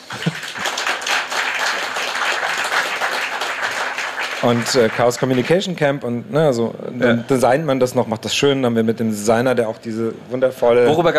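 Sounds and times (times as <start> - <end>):
laughter: 0.0 - 0.8
large audience applauding: 0.0 - 5.7
speech: 4.4 - 11.1.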